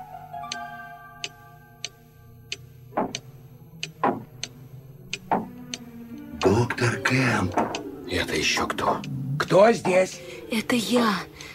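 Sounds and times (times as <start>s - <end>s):
mantel clock above the fireplace ticking: 1.2s - 11.5s
dull knocks: 3.0s - 3.2s, 4.0s - 4.3s
speech: 6.5s - 11.5s.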